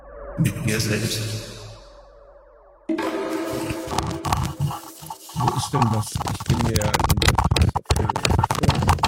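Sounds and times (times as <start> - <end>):
speech: 0.4 - 1.5, 5.6 - 7.2
crackling and crunching: 3.7 - 9.0.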